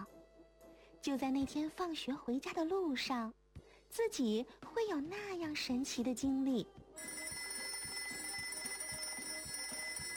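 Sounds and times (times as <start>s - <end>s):
speech: 1.0s - 7.2s
mechanical alarm clock bell ringing: 7.0s - 10.1s.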